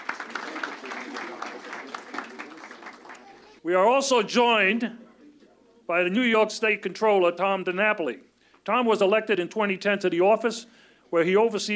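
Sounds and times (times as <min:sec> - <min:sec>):
crowd applauding in a large room: 0:00.0 - 0:03.6
speech: 0:03.6 - 0:05.0, 0:05.9 - 0:11.7.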